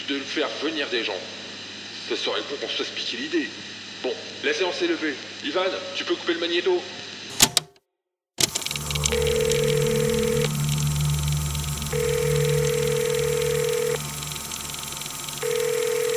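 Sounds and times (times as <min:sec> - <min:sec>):
speech: 0:00.1 - 0:01.4, 0:02.1 - 0:07.0
sharp clicks: 0:07.3 - 0:07.7, 0:08.4 - 0:16.1
mobile phone ringing in long tonal bursts: 0:08.4 - 0:16.1
steady low hum: 0:08.4 - 0:16.1.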